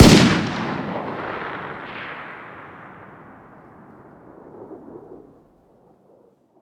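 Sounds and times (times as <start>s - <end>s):
distant 308 rifle fire outdoors: 0.0s - 5.3s.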